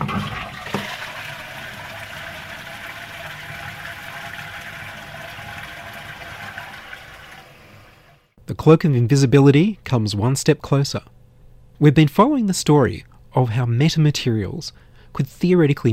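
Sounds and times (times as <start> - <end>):
toilet clunk: 0.0 - 7.4
toilet flushing: 0.0 - 8.3
speech: 8.6 - 11.2, 11.8 - 15.9.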